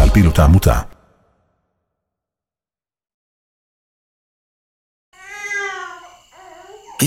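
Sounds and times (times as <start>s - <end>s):
speech: 0.1s - 1.0s
baby wailing: 5.2s - 7.0s.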